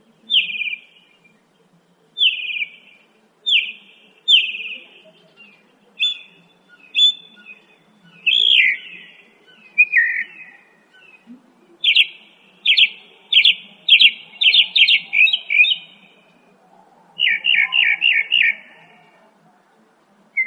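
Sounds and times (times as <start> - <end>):
Northern mockingbird singing varied phrases: 0.1 - 1.6, 2.2 - 16.2, 17.2 - 19.0.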